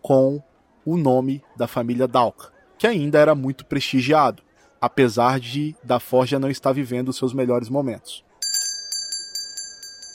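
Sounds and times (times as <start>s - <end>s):
speech: 0.1s - 8.3s
small shop door bell jingling: 8.4s - 10.1s.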